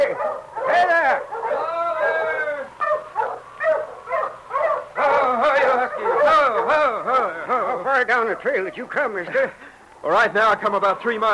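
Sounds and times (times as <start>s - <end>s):
sled dog team barking and whining: 0.0s - 8.7s
speech: 8.2s - 11.3s.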